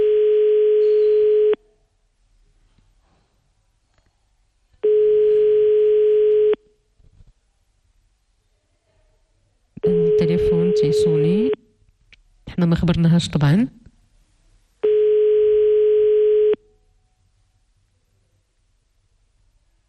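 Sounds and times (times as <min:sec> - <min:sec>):
telephone ringback tones of an unanswered call: 0:00.0 - 0:01.6, 0:04.8 - 0:06.6, 0:09.8 - 0:11.6, 0:14.8 - 0:16.6
speech: 0:12.6 - 0:13.9.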